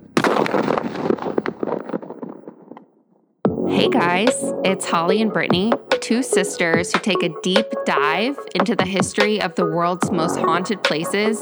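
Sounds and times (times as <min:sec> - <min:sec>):
sharp cracks in gunshot tail: 0:00.0 - 0:03.3
pump-action gun gunshot blast: 0:00.2 - 0:01.8
speech: 0:03.8 - 0:11.4.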